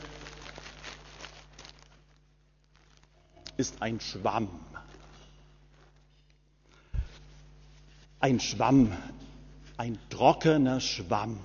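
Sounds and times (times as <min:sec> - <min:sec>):
rummaging through a plastic bag: 0:00.0 - 0:03.5, 0:04.8 - 0:06.2
speech: 0:03.6 - 0:04.8, 0:08.2 - 0:09.2, 0:09.8 - 0:11.4.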